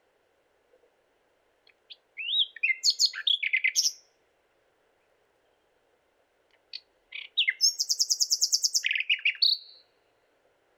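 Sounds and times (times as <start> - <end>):
Luscinia megarhynchos common nightingale song: 1.6 - 4.2, 6.5 - 10.2
common nightingale rapid trill of repeated notes: 2.2 - 4.0, 7.2 - 9.8.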